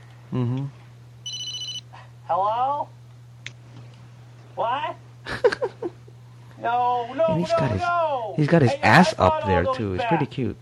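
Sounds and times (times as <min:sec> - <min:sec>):
speech: 0:00.3 - 0:00.8, 0:02.3 - 0:03.0, 0:04.6 - 0:05.9, 0:06.6 - 0:10.5
electronic telephone ring tone: 0:01.2 - 0:01.8.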